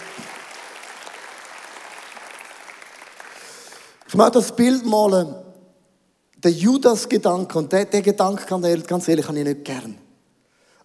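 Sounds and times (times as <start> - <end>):
large audience applause: 0.0 - 4.1
speech: 4.1 - 5.4, 6.4 - 10.0.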